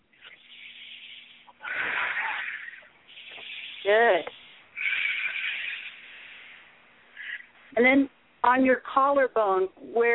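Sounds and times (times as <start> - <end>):
person inhaling and exhaling during a guided exercise: 0.2 - 7.5
speech: 3.9 - 4.4, 7.8 - 10.1.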